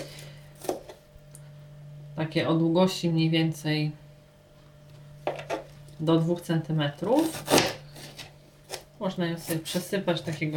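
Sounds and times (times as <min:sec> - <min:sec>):
knife chopping onion on a cutting board: 0:00.0 - 0:01.0, 0:07.2 - 0:09.9
low hum: 0:00.0 - 0:10.5
speech: 0:02.2 - 0:04.0, 0:06.0 - 0:07.7, 0:09.0 - 0:10.5.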